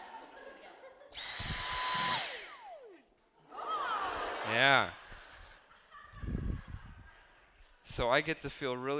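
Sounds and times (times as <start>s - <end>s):
laughter: 0.0s - 1.2s, 3.4s - 8.0s
Dyson vacuum motor whining and winding down: 1.2s - 3.2s
speech: 4.5s - 5.0s, 7.9s - 8.9s.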